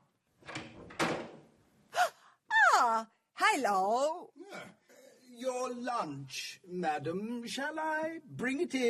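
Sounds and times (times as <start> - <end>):
rustling door movement: 0.4 - 1.5
bathroom door pushed shut with solid thuds: 0.5 - 1.5
speech: 3.0 - 4.7, 5.4 - 8.8.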